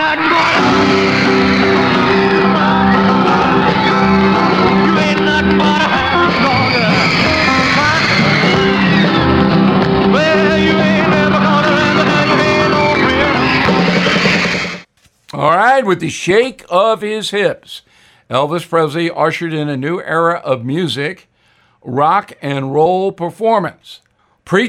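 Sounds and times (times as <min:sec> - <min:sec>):
crowd of girls screaming and shrieking: 0:00.0 - 0:14.8
speech: 0:15.8 - 0:24.6.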